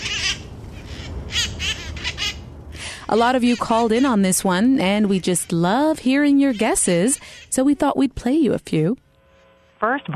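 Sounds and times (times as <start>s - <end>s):
wild cherry-headed conures squawking on Telegraph Hill in San Francisco: 0.0s - 8.0s
low rumbling background noise: 0.0s - 9.2s
speech: 3.1s - 9.0s, 9.8s - 10.1s.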